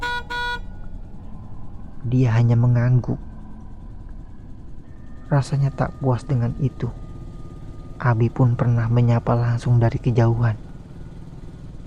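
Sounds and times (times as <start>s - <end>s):
motorcycle horn honking: 0.0s - 0.8s
low engine rumble idling: 0.0s - 11.8s
speech: 2.0s - 3.3s, 5.3s - 7.1s, 8.0s - 10.6s.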